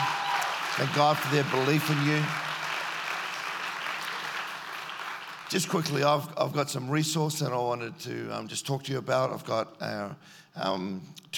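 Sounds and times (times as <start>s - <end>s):
church congregation clapping: 0.0s - 6.3s
speech: 0.8s - 2.5s, 5.5s - 11.3s.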